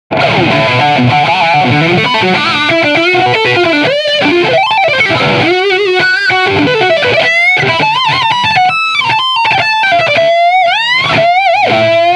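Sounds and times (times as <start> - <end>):
raw solo: 0.1 - 12.1.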